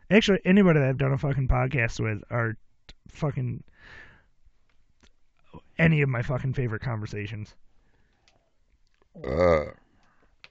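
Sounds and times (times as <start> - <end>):
speech: 0.1 - 4.0, 5.8 - 7.6, 9.2 - 9.8
burp: 9.2 - 9.9.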